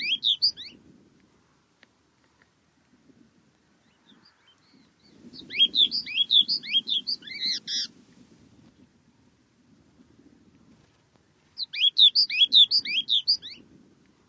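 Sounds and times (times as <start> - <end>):
bird calls twittering: 0.0 - 0.8, 3.8 - 7.9, 11.6 - 13.6.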